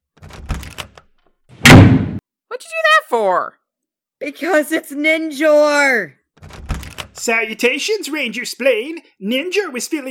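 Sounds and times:
door clattering knocks: 0.2s - 0.9s, 6.4s - 7.2s
speech: 3.1s - 3.6s, 4.2s - 6.5s, 7.2s - 10.0s
door pulled open with a loud thud: 6.4s - 7.1s.

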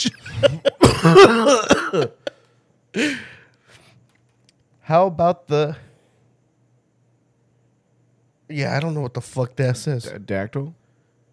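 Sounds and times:
person clearing throat: 0.0s - 2.3s
loud fit of harsh hacking coughing: 0.0s - 2.4s
speech: 1.1s - 2.2s, 2.9s - 3.3s, 4.9s - 5.9s, 8.5s - 10.8s.

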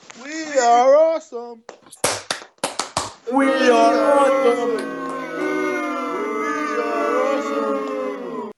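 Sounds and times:
sharp claps: 1.9s - 3.2s
speech: 3.3s - 5.0s
large wrestling crowd in Florida chanting and cheering: 3.3s - 8.5s.

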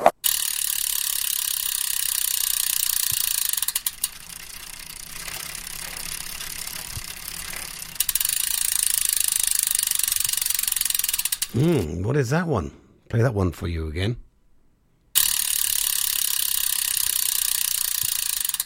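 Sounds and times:
freewheeling bicycle hub ratchet ticking: 0.2s - 11.6s, 15.2s - 18.6s
speech: 11.6s - 14.2s.

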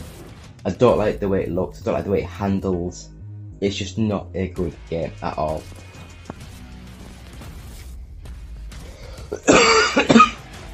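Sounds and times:
speech: 0.6s - 5.9s
person coughing with harsh raspy bursts: 9.3s - 10.4s.

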